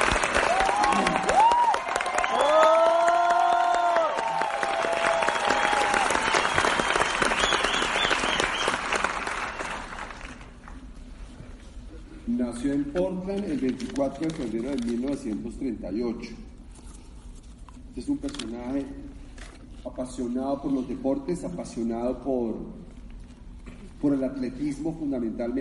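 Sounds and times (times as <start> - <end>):
audience applause: 0.0 - 10.8
crowd whooping: 0.1 - 9.1
speech: 13.3 - 16.5, 18.0 - 19.2, 19.9 - 22.9, 24.0 - 25.6.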